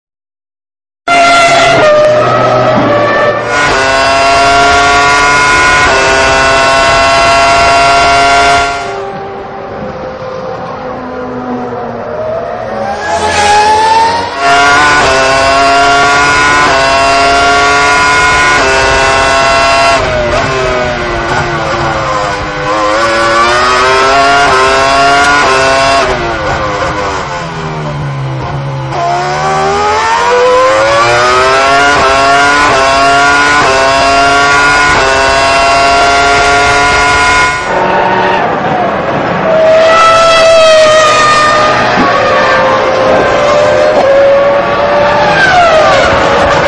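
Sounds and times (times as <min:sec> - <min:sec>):
Ferrari 550 Maranello engine: 0:01.1 - 0:46.6.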